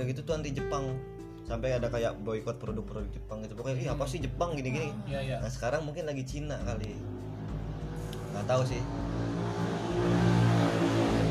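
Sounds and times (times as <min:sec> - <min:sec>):
speech: 0:00.0 - 0:07.2, 0:08.4 - 0:09.4, 0:10.0 - 0:10.4
motorcycle engine humming and revving past: 0:06.8 - 0:11.2.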